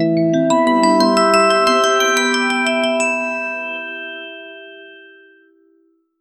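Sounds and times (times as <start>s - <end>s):
fantasy RPG music in a major scale: 0.1s - 5.0s.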